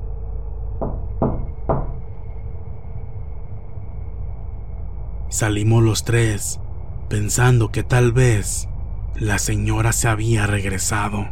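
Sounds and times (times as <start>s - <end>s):
low steady hum: 0.0s - 11.3s
firm knocks on a door: 0.8s - 2.1s
speech: 5.3s - 11.3s.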